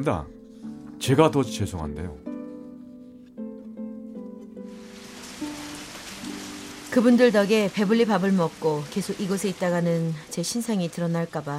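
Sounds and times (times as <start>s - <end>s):
speech: 0.0s - 0.4s, 1.0s - 2.3s, 6.9s - 11.5s
steady rain pouring: 4.6s - 11.5s.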